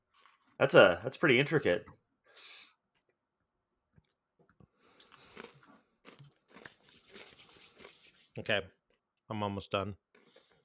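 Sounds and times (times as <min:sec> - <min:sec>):
potato chip being chewed: 0:00.0 - 0:00.6, 0:04.9 - 0:08.3, 0:10.1 - 0:10.6
speech: 0:00.6 - 0:02.0, 0:08.4 - 0:10.0.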